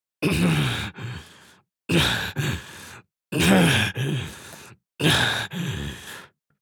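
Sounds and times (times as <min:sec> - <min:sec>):
heavy breathing anime villain vocalization: 0:00.4 - 0:06.4.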